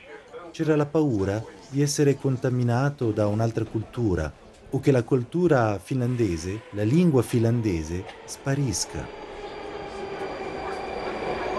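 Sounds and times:
speech: 0.5s - 9.2s
subway train in motion heard from inside the car: 1.0s - 11.5s
faint tonal whine from subway train wheels and motors: 8.1s - 11.5s.

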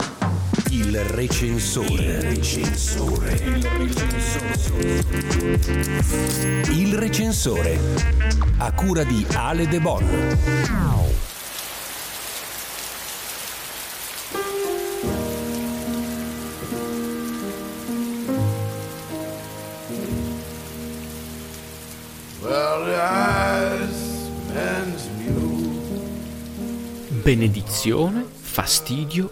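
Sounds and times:
steady rain pattering on a surface: 0.4s - 6.1s, 10.5s - 27.8s
speech: 0.7s - 11.3s, 27.3s - 29.3s.

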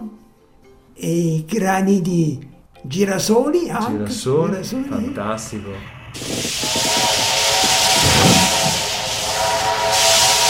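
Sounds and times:
speech: 1.0s - 6.5s
steam train chugging: 4.4s - 10.4s
sustained whistle-like tone: 6.3s - 10.4s.

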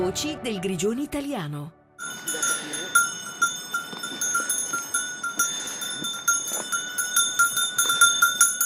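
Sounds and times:
speech: 0.1s - 1.8s
sheep bells clanking and jingling on a mountain path: 2.0s - 8.6s
shuffling of a flock of sheep: 2.1s - 8.6s.

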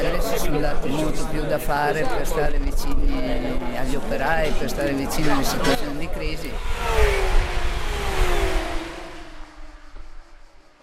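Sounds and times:
speech: 0.5s - 7.4s
high-revving racing car engine roaring past at a racetrack: 3.6s - 10.8s.

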